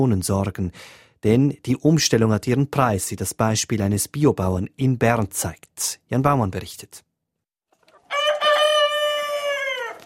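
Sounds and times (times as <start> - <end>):
speech: 0.0 - 7.1
rooster crowing: 8.0 - 10.0.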